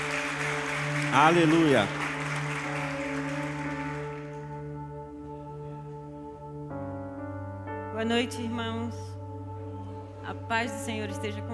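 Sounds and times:
audience applauding: 0.0 - 4.6
steady sustained keyboard chords: 0.0 - 11.5
speech: 1.2 - 2.0, 8.0 - 9.1, 10.3 - 11.5.

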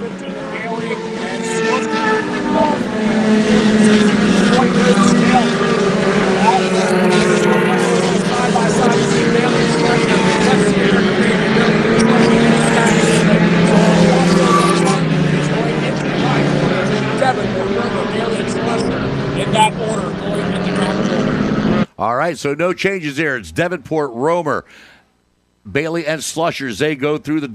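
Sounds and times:
race car engines accelerating on a road course at the green-flag start: 0.0 - 21.9
speech: 22.4 - 25.0, 25.6 - 27.5.

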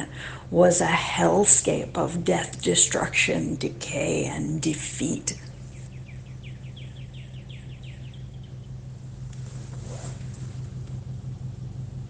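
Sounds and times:
truck engine idling outside a window: 0.0 - 12.0
speech: 0.1 - 5.5
bird chirping: 5.2 - 9.2.

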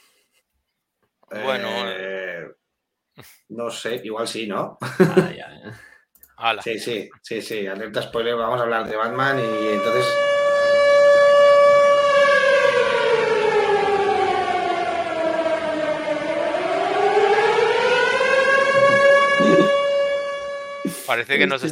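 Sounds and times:
speech: 1.3 - 2.1, 3.2 - 10.3, 21.2 - 21.6
siren wailing: 1.4 - 1.9, 9.0 - 21.6
laughter: 4.8 - 5.9.

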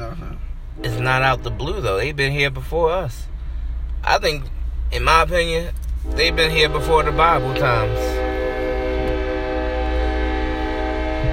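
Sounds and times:
train wheels and engine rumbling past: 0.0 - 11.3
passing train horn: 0.7 - 2.2, 6.0 - 11.3
speech: 1.0 - 3.3, 4.0 - 8.2.

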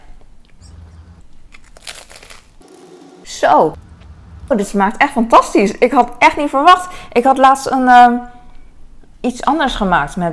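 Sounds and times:
crinkly chewing of food: 1.1 - 2.6
crunchy biting into food: 1.5 - 3.1
speech: 3.4 - 3.8, 4.5 - 8.4, 9.2 - 10.3.

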